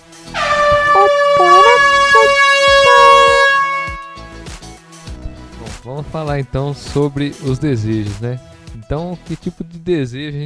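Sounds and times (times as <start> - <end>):
loud blaring air horn blast: 0.4 - 4.5
speech: 6.1 - 10.4.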